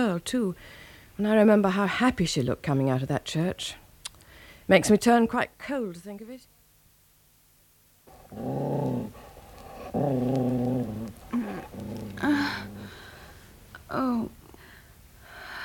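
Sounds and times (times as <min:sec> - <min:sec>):
speech: 0:00.0 - 0:03.8, 0:04.7 - 0:06.5, 0:08.3 - 0:09.2, 0:09.9 - 0:12.7, 0:13.9 - 0:14.4
dog growling: 0:08.1 - 0:13.5.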